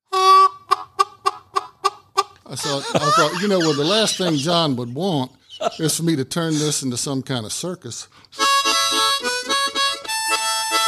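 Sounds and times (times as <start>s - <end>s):
harmonica playing a sustained reedy note: 0.1s - 4.1s, 8.3s - 10.8s
laughter: 2.5s - 6.8s
speech: 2.5s - 8.5s.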